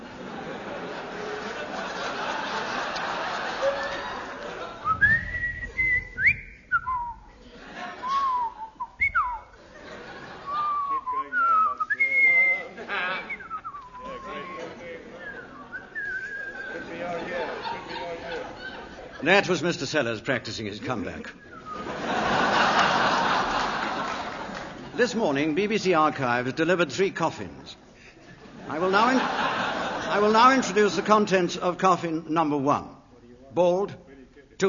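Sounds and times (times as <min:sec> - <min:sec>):
laughter: 0:00.0 - 0:05.9, 0:07.3 - 0:19.7, 0:21.6 - 0:25.1, 0:28.1 - 0:31.6
diffuse crowd-like noise: 0:00.0 - 0:26.5, 0:27.1 - 0:31.8
person whistling a wandering tune: 0:04.8 - 0:07.3, 0:08.0 - 0:09.5, 0:10.6 - 0:12.7, 0:15.2 - 0:16.7
speech: 0:19.3 - 0:21.5, 0:25.0 - 0:27.8, 0:28.7 - 0:29.4, 0:30.1 - 0:32.9, 0:33.5 - 0:34.0.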